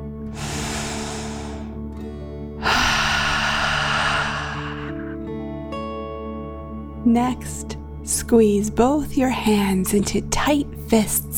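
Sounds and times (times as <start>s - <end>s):
soft sustained music: 0.0s - 11.3s
deep breath in and out during a children's guided meditation: 0.3s - 5.4s
speech: 7.0s - 11.3s.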